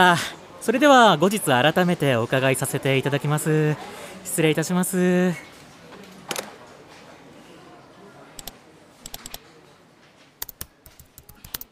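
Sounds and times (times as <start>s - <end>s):
speech: 0.0s - 5.5s
fingers typing an email on a computer keyboard: 8.4s - 9.4s, 10.4s - 11.7s.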